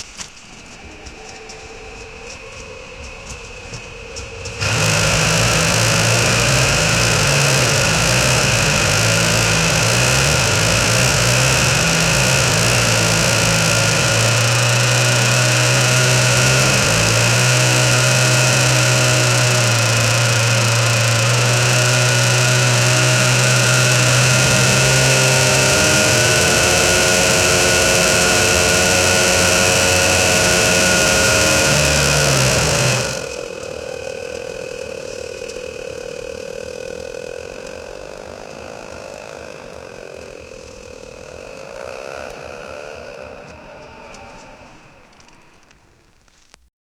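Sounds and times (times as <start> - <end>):
vintage BMW R7 motorcycle engine: 0.0 - 46.7.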